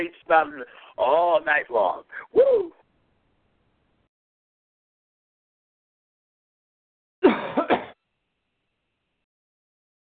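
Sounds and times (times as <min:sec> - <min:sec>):
speech: 0:00.0 - 0:02.8
person coughing: 0:07.2 - 0:08.0.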